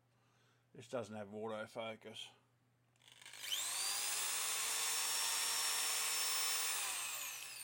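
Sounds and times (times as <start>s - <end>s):
speech: 0.7s - 2.4s
small 10mm power drill spinning: 3.0s - 7.6s.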